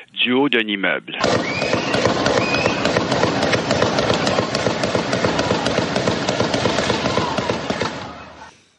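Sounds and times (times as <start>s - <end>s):
speech: 0.2s - 1.6s
rapid gunshots fired at a crowd: 1.2s - 8.5s.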